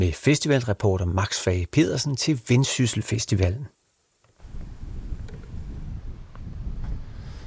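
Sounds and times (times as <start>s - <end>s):
speech: 0.0s - 3.8s
steady gusty wind outdoors by the sea: 4.4s - 7.4s.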